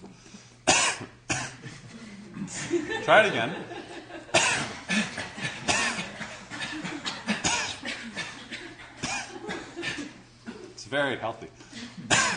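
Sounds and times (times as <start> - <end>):
deliberate forceful coughs on exhale: 0.6 - 1.6, 4.3 - 10.8, 11.8 - 12.3
laughter: 1.6 - 10.8
speech: 2.6 - 3.8, 10.9 - 11.6.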